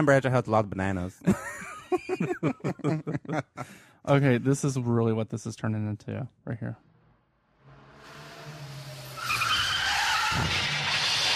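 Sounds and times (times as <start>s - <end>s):
speech: 0.0s - 6.9s
laughter: 0.9s - 3.8s
car crash impact: 7.6s - 11.3s
car tires screeching as the car skids: 7.6s - 11.3s.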